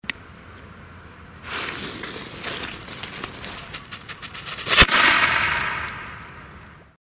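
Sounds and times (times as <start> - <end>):
firecrackers with fuse exploding: 1.5 - 6.7.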